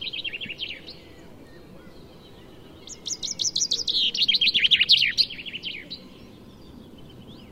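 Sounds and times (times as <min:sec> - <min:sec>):
common chaffinch Fringilla coelebs singing: 0:00.0 - 0:07.4.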